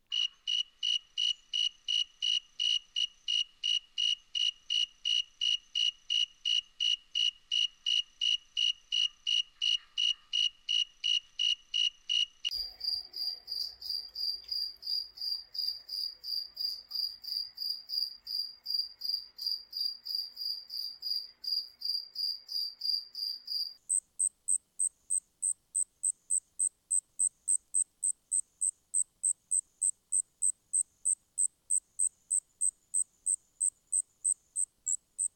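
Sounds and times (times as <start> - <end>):
tree field ground cricket noise: 0.1 - 35.3.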